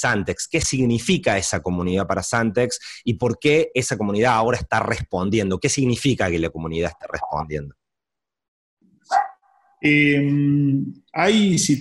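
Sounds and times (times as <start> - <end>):
speech: 0.0 - 7.8, 9.8 - 11.8
dog barking: 9.1 - 9.6.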